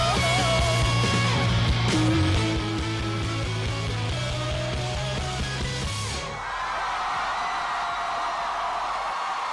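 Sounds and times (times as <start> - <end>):
loud live music: 0.0 - 6.5
concert crowd cheering and screaming: 6.2 - 9.5.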